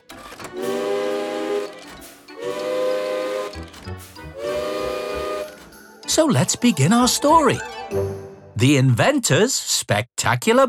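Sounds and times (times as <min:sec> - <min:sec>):
shrill steam whistle from an old railway engine rigged as an alarm clock: 0:00.5 - 0:08.1
steam hissing: 0:00.6 - 0:06.0
speech: 0:06.1 - 0:10.6.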